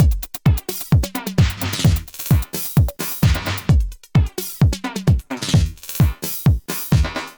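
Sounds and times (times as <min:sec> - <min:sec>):
tape drum beat with transient shaper effect: 0:00.0 - 0:07.3.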